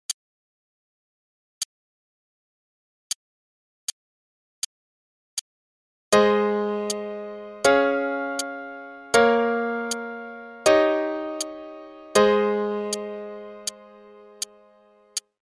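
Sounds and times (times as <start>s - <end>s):
A flat major chord progression: 6.2s - 15.2s.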